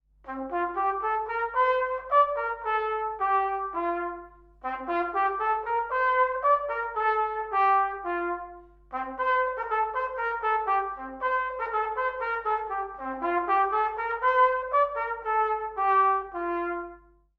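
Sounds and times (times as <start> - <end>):
trumpet: 0.1 - 17.3.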